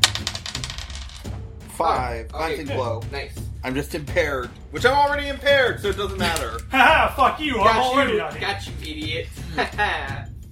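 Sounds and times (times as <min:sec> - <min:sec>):
six-sided die clattering across a tabletop during a game: 0:00.0 - 0:01.3
speech: 0:01.8 - 0:10.3
laughter: 0:06.0 - 0:08.6, 0:09.2 - 0:10.3.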